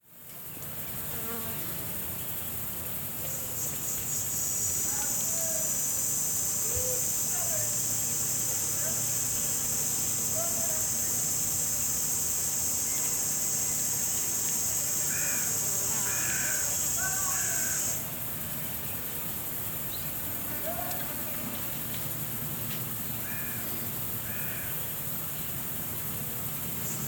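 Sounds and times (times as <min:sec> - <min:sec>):
insects in a soundscape: 0:00.0 - 0:27.0.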